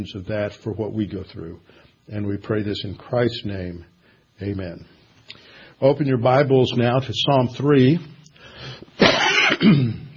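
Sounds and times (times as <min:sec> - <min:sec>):
speech: 0:00.0 - 0:10.0
quiet breath: 0:01.6 - 0:02.1, 0:03.9 - 0:05.8, 0:08.2 - 0:09.0
raspy cough with a throaty rattle: 0:09.0 - 0:10.1.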